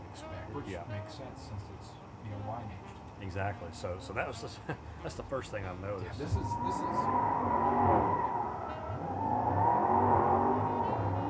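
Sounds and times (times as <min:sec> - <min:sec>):
speech: 0:00.6 - 0:09.6
laughter: 0:04.1 - 0:06.9
two car engines revving before a street race: 0:05.8 - 0:11.2.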